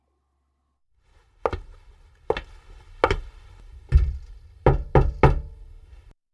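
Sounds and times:
knocking on a neighbor's wooden door: 3.9s - 5.6s.

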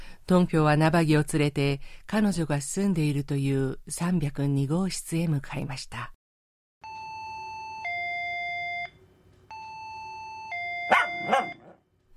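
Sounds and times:
speech: 0.3s - 6.2s
electronic doorbell at an apartment door ringing: 6.8s - 8.9s, 9.5s - 11.8s
dog barking: 10.9s - 12.1s.

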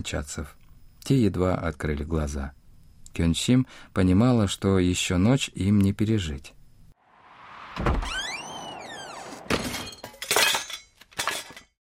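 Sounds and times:
speech: 0.0s - 6.6s, 7.8s - 8.3s
enamel bowl falling off a shelf and crashing: 9.4s - 11.6s.

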